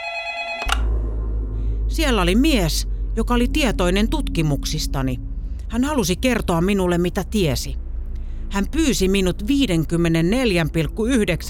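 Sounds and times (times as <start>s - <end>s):
landline telephone on a desk ringing with a buzzy electronic tone: 0.0s - 0.8s
low rumbling hum: 0.6s - 11.4s
speech: 2.0s - 7.8s, 8.5s - 11.4s.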